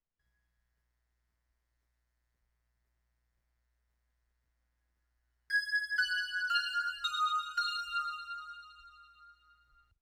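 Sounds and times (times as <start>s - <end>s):
synth bells: 5.5s - 9.8s.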